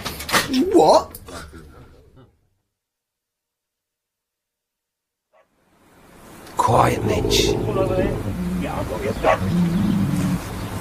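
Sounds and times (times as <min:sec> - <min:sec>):
speech: 0:00.5 - 0:01.2, 0:06.8 - 0:10.0
dog barking: 0:05.3 - 0:05.5, 0:07.3 - 0:09.6
low rumbling growl-like drone: 0:06.6 - 0:10.8.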